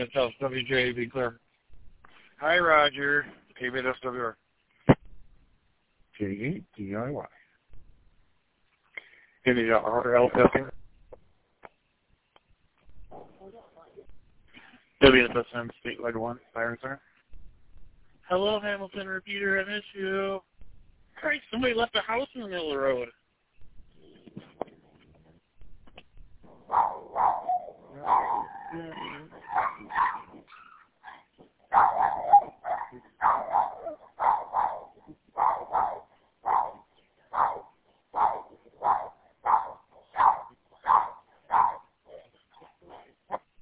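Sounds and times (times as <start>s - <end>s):
speech: 0.0s - 1.4s, 2.4s - 4.4s, 6.2s - 7.4s, 9.4s - 10.8s, 15.0s - 17.1s, 18.3s - 20.5s, 21.2s - 23.2s, 26.7s - 30.3s
dogs barking over a shared radio channel: 26.6s - 28.7s, 29.3s - 43.6s.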